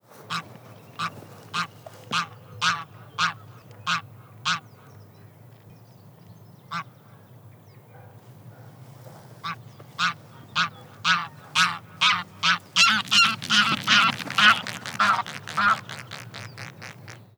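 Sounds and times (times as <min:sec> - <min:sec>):
Anser anser: 0:00.2 - 0:04.6, 0:08.7 - 0:17.3.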